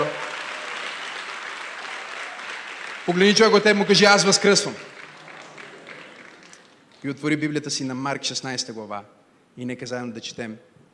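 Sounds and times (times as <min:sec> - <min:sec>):
large crowd applauding: 0:00.0 - 0:07.1
speech: 0:03.1 - 0:04.9, 0:07.0 - 0:10.7.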